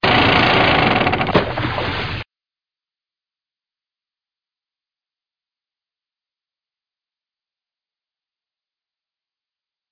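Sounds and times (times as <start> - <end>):
machinery: 0.0 - 2.2.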